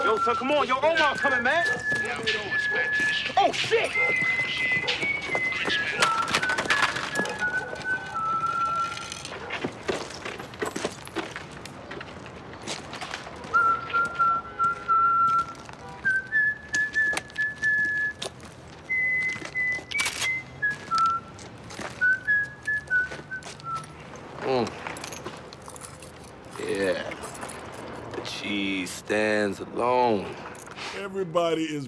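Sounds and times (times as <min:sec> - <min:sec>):
man whistling a nursery-rhyme tune while walking in the street: 0:00.0 - 0:09.2, 0:13.5 - 0:24.0
street noise: 0:00.0 - 0:31.8
speech: 0:00.1 - 0:06.4, 0:31.0 - 0:31.8.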